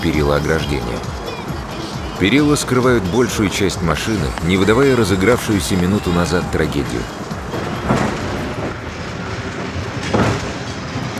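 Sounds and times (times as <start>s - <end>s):
speech: 0.0s - 1.3s, 2.2s - 7.2s
green suburban electric train pulling away: 2.4s - 11.1s.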